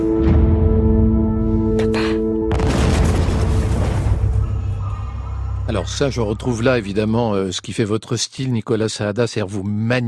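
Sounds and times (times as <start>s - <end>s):
tense droning film score: 0.0s - 8.2s
loud cinematic blast in a film attack scene: 2.5s - 4.9s
rumbling explosions: 2.5s - 5.0s
speech: 5.8s - 10.0s.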